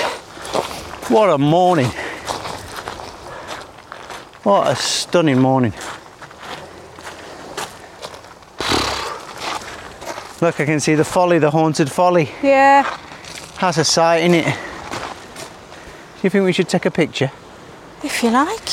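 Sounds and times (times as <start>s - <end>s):
footsteps crunching underfoot heading up to the beach: 0.0s - 10.8s, 12.8s - 15.9s
speech: 0.6s - 2.0s, 4.4s - 5.9s, 10.4s - 13.0s, 13.6s - 14.7s, 16.2s - 17.4s, 18.0s - 18.7s.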